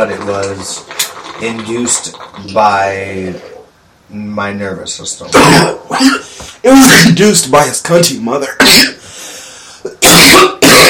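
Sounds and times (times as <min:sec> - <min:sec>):
speech: 0:00.0 - 0:03.5, 0:04.1 - 0:09.0
person coughing after smoking cannabis: 0:05.4 - 0:06.3, 0:08.6 - 0:09.0, 0:09.9 - 0:10.8.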